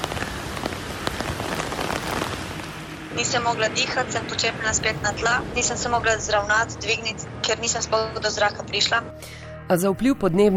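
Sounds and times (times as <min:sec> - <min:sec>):
rain pattering on a hard surface in Australia: 0:00.0 - 0:03.6
speech: 0:03.2 - 0:10.5.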